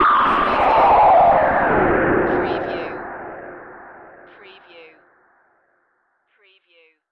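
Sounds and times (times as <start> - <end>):
production element distortion effect: 0.0 - 4.7.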